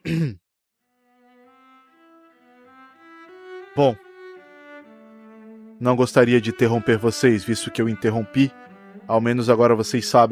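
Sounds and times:
throat clearing: 0.0 - 0.4
speech: 3.8 - 4.0, 5.8 - 10.3.

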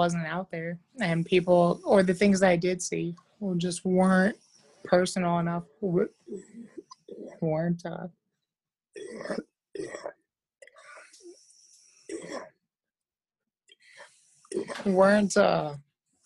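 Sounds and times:
speech: 0.0 - 6.6, 7.4 - 8.2, 9.0 - 10.1, 14.6 - 15.8
person coughing: 9.0 - 10.2
person clearing throat: 9.0 - 11.0, 12.1 - 12.6.

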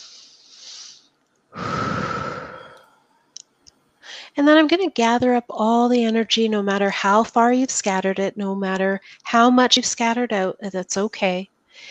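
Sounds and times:
deep breath taken during a guided relaxation exercise: 0.0 - 3.1, 4.0 - 4.3
speech: 4.4 - 11.8.

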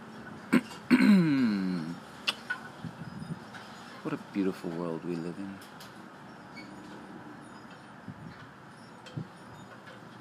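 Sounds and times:
person clearing throat: 0.5 - 2.0
speech: 4.1 - 5.9.

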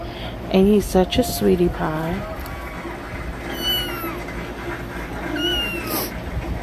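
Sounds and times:
steady low hum: 0.0 - 6.6
speech: 0.5 - 2.4
cat meowing with drawn-out wavering cries: 3.5 - 4.3, 5.3 - 6.2.

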